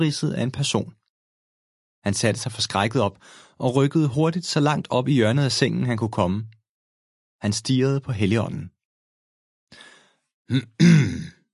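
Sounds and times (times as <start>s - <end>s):
speech: 0.0s - 1.0s, 2.0s - 6.6s, 7.4s - 8.8s, 10.5s - 11.4s
man clearing his throat: 10.5s - 11.5s.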